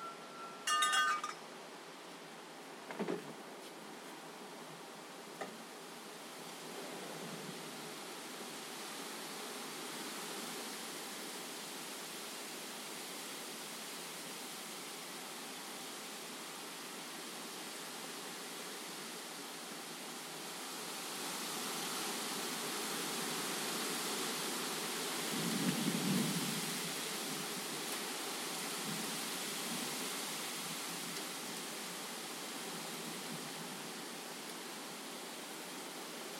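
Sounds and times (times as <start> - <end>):
bright clink: 0.0 - 1.4
heavy storm rain: 0.0 - 36.3
heavy storm wind: 0.0 - 36.3.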